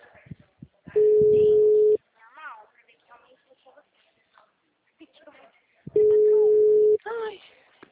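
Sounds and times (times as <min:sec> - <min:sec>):
telephone line tone while placing a call: 0:01.0 - 0:02.0, 0:06.0 - 0:07.0.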